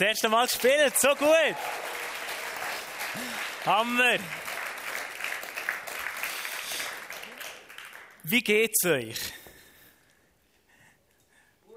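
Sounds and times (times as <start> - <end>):
speech: 0.0 - 1.9, 3.2 - 4.4, 8.2 - 9.4
audience applause for a performer: 0.0 - 8.2
person cheering: 1.0 - 2.0.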